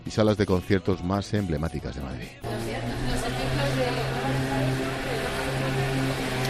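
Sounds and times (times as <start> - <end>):
speech: 0.1 - 4.9
motorcycle engine droning on a quiet night street: 2.5 - 6.4.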